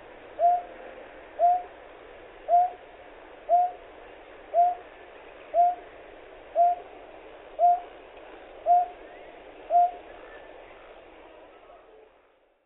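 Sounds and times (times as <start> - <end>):
Greater painted-snipe calling low hollow hoots in Hyogo: 0.4 - 0.8, 1.4 - 1.8, 2.5 - 2.8, 3.5 - 3.8, 4.5 - 4.9, 5.5 - 5.9, 6.5 - 6.9, 7.6 - 8.0, 8.6 - 10.4.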